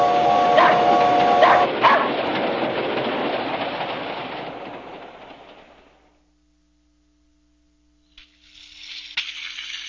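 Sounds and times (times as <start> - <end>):
brief tonal train whistle: 0.0 - 2.1
train rumbling along the rails: 0.0 - 6.2.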